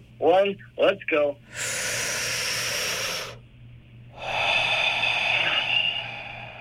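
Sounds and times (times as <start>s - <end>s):
speech: 0.2s - 1.7s
deep forceful breathing with big exhale during a relaxation exercise: 1.4s - 3.4s, 4.1s - 6.6s.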